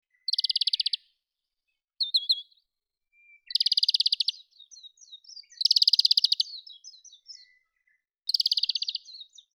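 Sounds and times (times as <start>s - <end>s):
kawarahiwa calling: 0.1s - 1.0s, 2.0s - 2.6s, 3.2s - 7.7s, 8.3s - 9.5s.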